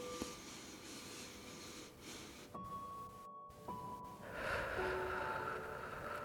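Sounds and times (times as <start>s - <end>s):
slow deep breath drawn in through the nose: 0.0s - 2.6s, 4.2s - 6.2s.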